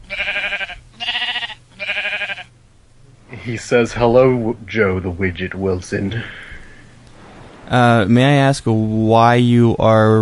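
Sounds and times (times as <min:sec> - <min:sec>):
sheep bleating: 0:00.0 - 0:02.5
speech: 0:03.4 - 0:06.4, 0:07.7 - 0:10.2.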